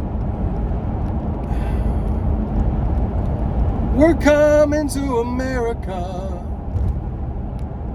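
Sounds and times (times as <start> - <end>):
18-wheeler truck engine and road roar: 0.0 - 7.9
speech: 4.0 - 6.3.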